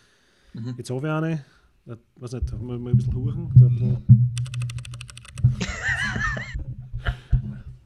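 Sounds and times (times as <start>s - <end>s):
speech: 0.6s - 4.6s
typing on Keychron K8 Wireless mechanical keyboard with brown switches: 4.4s - 5.5s
person laughing: 5.6s - 7.3s.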